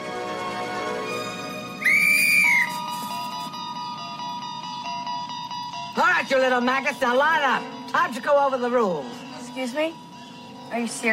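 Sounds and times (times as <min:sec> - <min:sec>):
music: 0:00.0 - 0:11.1
shrill whistle blast: 0:01.1 - 0:03.1
speech: 0:06.2 - 0:10.0, 0:10.7 - 0:11.1.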